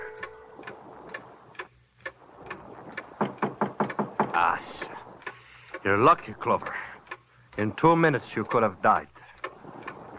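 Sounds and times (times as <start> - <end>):
clock ticking: 0.0 - 10.1
speech: 4.4 - 4.9, 5.8 - 6.8, 7.6 - 9.2.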